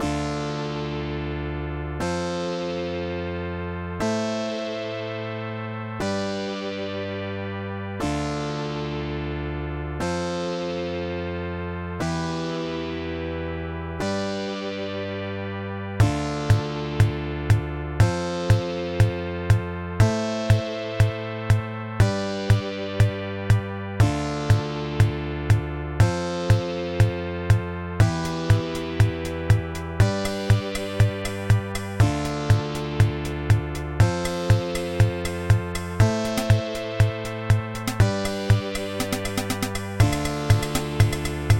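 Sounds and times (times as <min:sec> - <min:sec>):
dry slap bass synth: 0:00.0 - 0:41.5.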